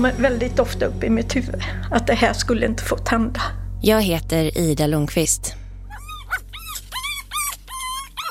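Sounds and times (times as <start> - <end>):
speech: 0.0 - 5.6
steady low hum: 0.0 - 8.2
dog puppies whimpering and yipping at a home: 5.9 - 8.2.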